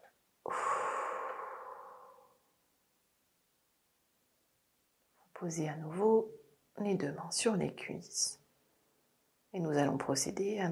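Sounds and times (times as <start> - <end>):
long steady breath out during deep relaxation breathing: 0.5 - 2.4
speech: 5.4 - 8.4, 9.5 - 10.7.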